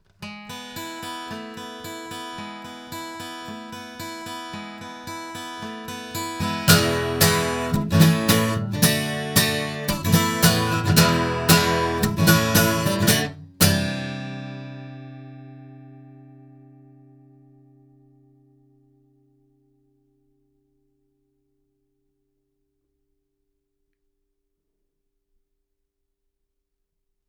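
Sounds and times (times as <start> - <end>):
guitar: 0.0 - 21.2.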